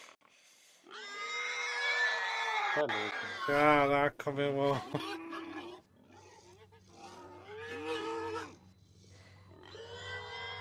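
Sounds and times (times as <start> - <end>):
suffering pig squealing and wailing: 0.8 - 3.9, 4.7 - 10.5
speech: 2.8 - 5.2.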